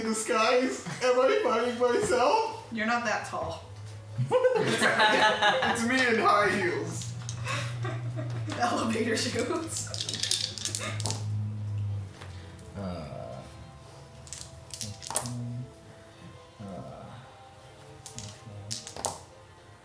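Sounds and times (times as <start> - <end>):
speech: 0.1 - 7.0, 8.6 - 10.0
laughter: 0.6 - 2.0, 4.2 - 9.9
many dice rattling on a table during a tabletop role-playing game: 6.9 - 7.4, 9.6 - 11.3, 14.0 - 15.4, 18.0 - 19.3.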